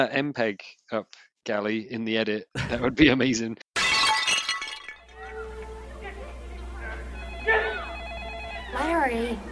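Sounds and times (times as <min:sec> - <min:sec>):
speech: 0:00.0 - 0:03.6, 0:09.0 - 0:09.4
vase smashing with scattering shards: 0:03.8 - 0:05.4
steady hum: 0:05.1 - 0:09.4
ringing telephone tone: 0:07.1 - 0:09.4.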